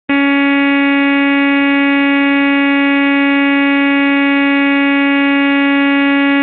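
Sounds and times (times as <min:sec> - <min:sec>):
wire alarm: 0:00.1 - 0:06.4.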